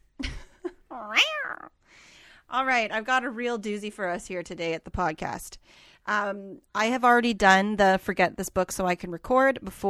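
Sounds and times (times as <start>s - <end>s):
cat meowing: 1.0s - 1.7s
speech: 2.5s - 9.8s.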